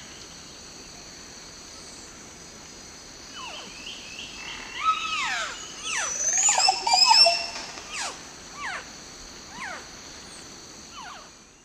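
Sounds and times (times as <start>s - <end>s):
group of green oropendolas singing and calling: 3.3s - 8.9s, 10.9s - 11.3s.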